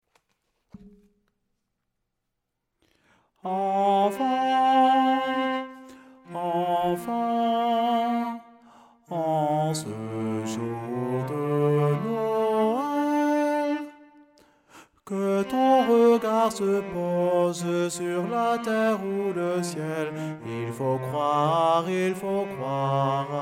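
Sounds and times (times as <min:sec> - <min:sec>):
baritone singing a Christmas carol: 0:03.4 - 0:05.6, 0:06.2 - 0:08.4, 0:09.0 - 0:13.9, 0:15.1 - 0:23.3.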